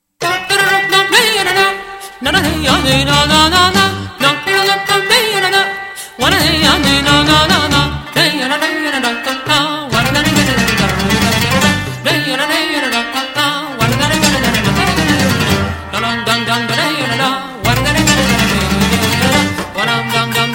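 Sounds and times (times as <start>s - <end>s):
Zeybek folk dance music: 0.2s - 20.5s.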